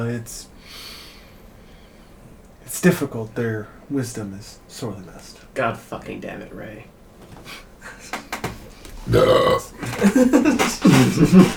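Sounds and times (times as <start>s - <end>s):
speech: 0.0s - 0.9s, 2.7s - 7.6s, 9.1s - 11.5s
laughter: 7.4s - 11.5s
man belching: 9.0s - 10.1s.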